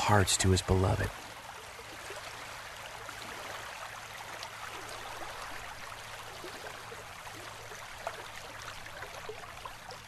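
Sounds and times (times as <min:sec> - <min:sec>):
gentle rain falling: 0:00.0 - 0:10.0
speech: 0:00.1 - 0:01.3.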